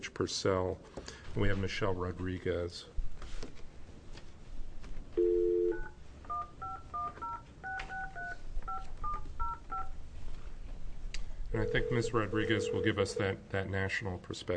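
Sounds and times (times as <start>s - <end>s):
speech: 0.0s - 3.0s, 11.6s - 14.5s
faint hiss of room noise: 0.0s - 14.5s
telephone dial tone: 5.2s - 8.4s
telephone keypad dialing tones: 5.2s - 9.9s.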